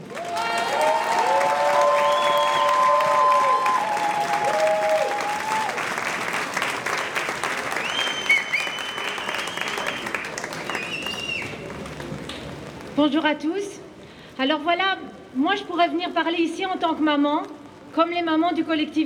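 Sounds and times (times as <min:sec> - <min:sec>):
large crowd applauding to welcome a speaker: 0:00.0 - 0:12.8
whistles and cheers: 0:00.1 - 0:05.9, 0:07.7 - 0:11.6
speech: 0:13.0 - 0:13.7, 0:14.4 - 0:19.0.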